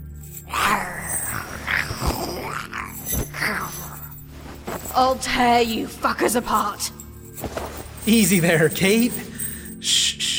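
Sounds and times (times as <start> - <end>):
metallic clinks like chains rattling: 0.0 - 9.9
low guttural growls and groans: 0.4 - 6.4
speech: 5.0 - 10.0.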